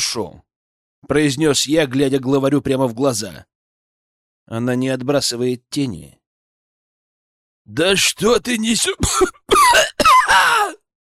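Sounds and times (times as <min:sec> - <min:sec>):
speech: 0:00.0 - 0:03.5, 0:04.5 - 0:06.2, 0:07.7 - 0:10.8
man coughing harshly: 0:08.9 - 0:10.8.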